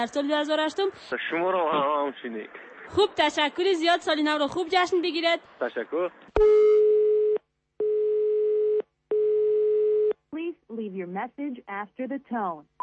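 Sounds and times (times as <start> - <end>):
speech: 0.0 - 6.7, 10.8 - 12.8
telephone ringback tone on a call to a home at New Year: 6.4 - 10.1.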